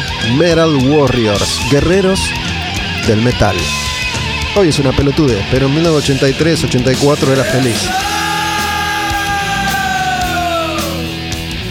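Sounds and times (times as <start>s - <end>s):
dense wall of distorted guitars: 0.0s - 11.6s
speech: 0.3s - 3.8s, 4.6s - 8.1s
long sustained battle cry yell in a heavy metal song: 7.4s - 11.0s.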